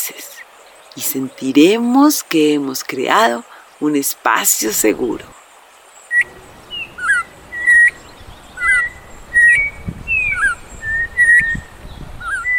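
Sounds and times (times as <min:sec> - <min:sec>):
speech: 0:01.0 - 0:05.4
flock of turpials calling with whistled notes: 0:06.1 - 0:12.5.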